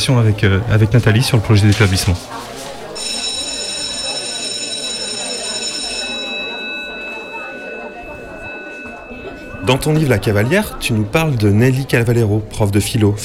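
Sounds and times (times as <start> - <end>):
speech: 0.0 - 2.6, 9.7 - 13.2
chatter of voices: 0.0 - 13.2
electric school bell ringing with a high tone: 3.0 - 11.0.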